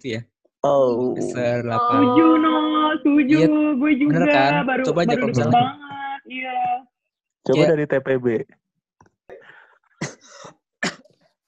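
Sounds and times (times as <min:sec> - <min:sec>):
speech: 0:00.0 - 0:08.6
harsh raspy coughing fit: 0:09.3 - 0:11.1.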